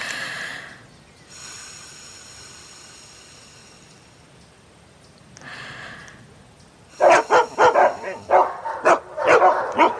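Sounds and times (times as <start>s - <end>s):
dogs barking and yipping rapidly: 7.0s - 9.9s.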